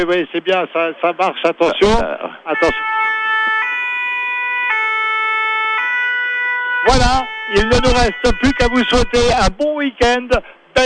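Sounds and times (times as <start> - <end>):
speech: 0.0 - 2.9, 6.8 - 10.8
fire engine two-tone siren in Wingen-sur-Moder: 2.5 - 9.5.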